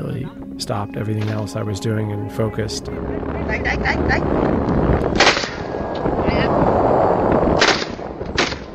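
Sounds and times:
constant rough rumble of wind or engine noise: 0.0s - 8.7s
speech: 0.3s - 5.5s
gunshots at sea near steel tuna longliners: 5.1s - 5.7s.

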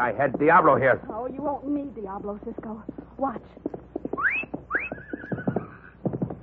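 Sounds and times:
speech: 0.0s - 4.4s
galloping hoofbeats: 0.0s - 6.4s
horse neighing: 4.2s - 6.0s.

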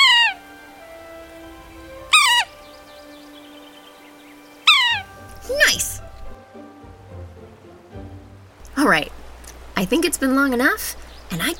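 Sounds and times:
sapsucker giving loud nasal cat-like mewing calls: 0.0s - 6.3s
faint twittering of other birds: 0.0s - 6.4s, 8.4s - 11.5s
speech: 8.8s - 9.2s, 9.8s - 11.5s.

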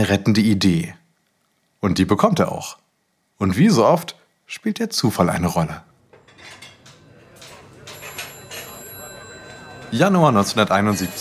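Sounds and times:
speech: 0.0s - 1.0s, 1.8s - 2.8s, 3.4s - 6.6s, 9.9s - 11.1s
dishes clattering: 6.1s - 11.1s
chatter: 6.2s - 11.1s
telephones ringing with electronic trills at a Domino's in East Lansing Michigan: 6.2s - 11.1s.

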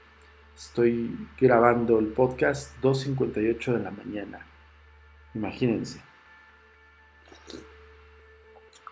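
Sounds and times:
low steady hum: 0.0s - 8.8s
speech: 0.6s - 4.5s, 5.3s - 6.1s, 7.5s - 7.7s
slurping a sip of hot coffee: 7.3s - 7.8s.

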